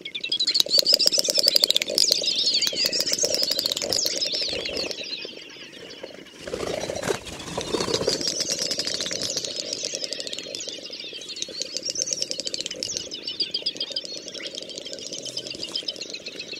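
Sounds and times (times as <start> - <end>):
great snipe display clicking: 0.2 - 5.0, 8.3 - 16.5
great snipe high wavering whistles: 0.2 - 5.2, 5.8 - 16.5.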